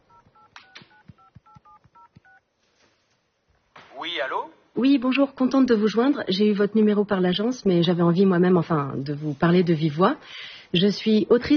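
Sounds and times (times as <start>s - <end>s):
touch-tone telephone keypad beeps dialing a number: 0.4s - 2.4s
speech: 4.0s - 11.5s.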